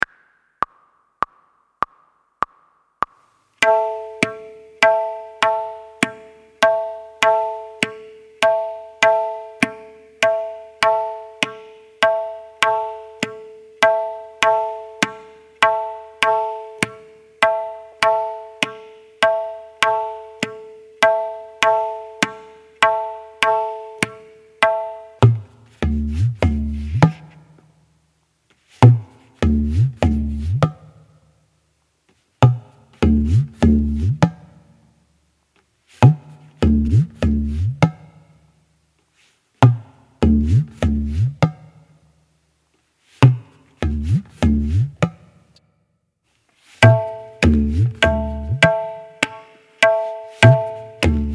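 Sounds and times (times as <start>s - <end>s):
Daadra tal rhythm practice: 0.0s - 28.1s, 28.8s - 31.4s, 32.4s - 35.0s, 36.0s - 38.8s, 39.6s - 42.4s, 43.2s - 45.6s, 46.8s - 51.3s.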